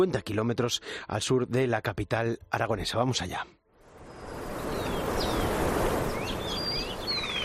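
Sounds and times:
speech: 0:00.0 - 0:03.6
soft wind: 0:03.7 - 0:07.4
several birds chirping and whistling: 0:04.1 - 0:07.4.

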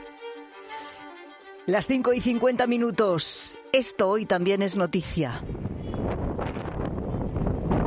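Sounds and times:
speech: 0:01.7 - 0:05.7
strong wind from a storm sweeping northwestern Spain: 0:05.4 - 0:07.8.

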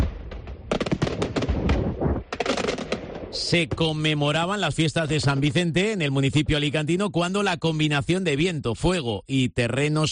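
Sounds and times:
fireworks bursts and crackles: 0:00.0 - 0:05.6
speech: 0:03.3 - 0:10.1.

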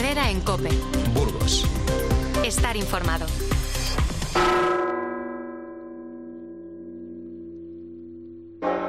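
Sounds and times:
speech: 0:00.1 - 0:03.8
ancient cathedral church bells rung by hand: 0:04.3 - 0:08.8.

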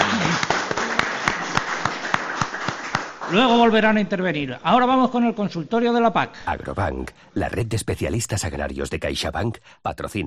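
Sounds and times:
crowd applauding: 0:00.0 - 0:03.7
speech: 0:03.3 - 0:10.2.

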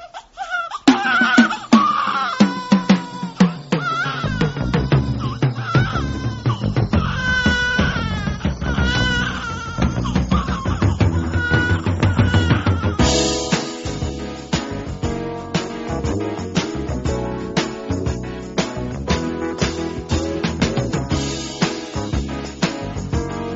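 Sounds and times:
newborn baby crying in thin, bleating wails in delivery room: 0:00.0 - 0:13.3
dense musical recording: 0:01.7 - 0:23.5.

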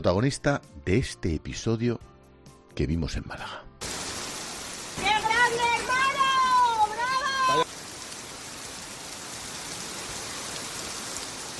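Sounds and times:
speech: 0:00.0 - 0:02.1, 0:02.8 - 0:04.0
heavy torrential rain striking surfaces: 0:03.8 - 0:11.5.

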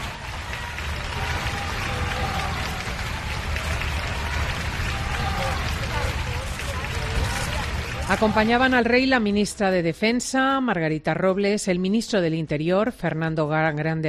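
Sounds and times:
large crowd cheering and applauding for the king: 0:00.0 - 0:09.4
speech: 0:08.1 - 0:14.0.

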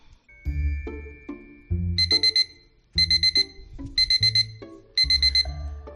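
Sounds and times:
alarm clock beeping: 0:00.3 - 0:05.9.

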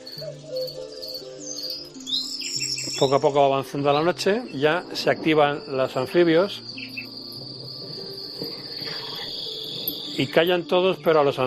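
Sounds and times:
lower tonal calls, perhaps birds: 0:00.0 - 0:11.3
crickets chirping in a nighttime field: 0:00.0 - 0:11.4
speech: 0:00.2 - 0:01.1, 0:02.9 - 0:06.9, 0:10.2 - 0:11.4.

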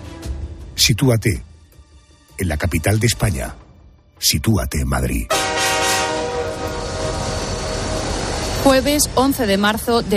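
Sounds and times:
speech: 0:00.8 - 0:01.5, 0:02.4 - 0:03.6, 0:04.2 - 0:05.4, 0:08.6 - 0:10.1
steady horn-like tone: 0:05.3 - 0:09.2
commuter train rumbling at a rail station in Madrid: 0:05.3 - 0:10.1.

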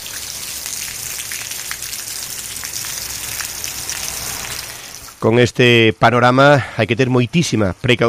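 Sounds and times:
heavy rain pouring outside a building: 0:00.0 - 0:05.4
speech: 0:05.2 - 0:08.0.

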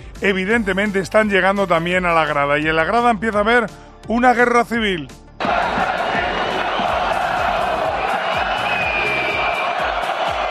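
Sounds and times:
speech: 0:00.2 - 0:05.2
dense stadium crowd roaring and chanting: 0:05.4 - 0:10.4
loud whistling in a stadium: 0:05.4 - 0:10.4.

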